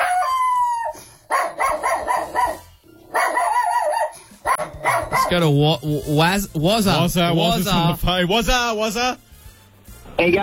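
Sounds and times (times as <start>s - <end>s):
dog howling: 0.0s - 5.4s
speech: 5.3s - 9.2s, 10.2s - 10.4s.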